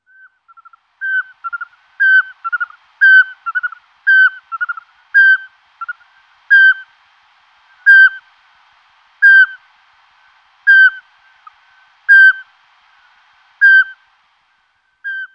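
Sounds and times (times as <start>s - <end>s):
Eurasian pygmy owl Glaucidium passerinum calling: 0.0s - 6.9s, 7.7s - 8.3s, 9.2s - 9.7s, 10.6s - 12.5s, 13.6s - 14.0s, 15.0s - 15.3s.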